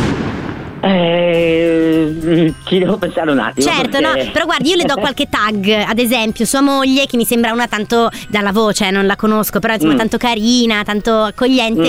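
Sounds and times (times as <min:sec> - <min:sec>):
comic explosion sound effect: 0:00.0 - 0:01.5
speech: 0:00.8 - 0:11.8
laughter: 0:00.9 - 0:05.4.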